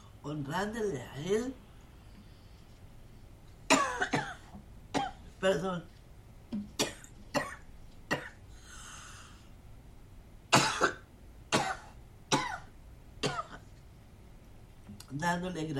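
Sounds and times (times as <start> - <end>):
speech: 0.2 - 1.6, 5.4 - 5.9, 15.2 - 15.7
harsh coughing fit: 3.7 - 5.3, 6.8 - 8.4, 10.5 - 13.7.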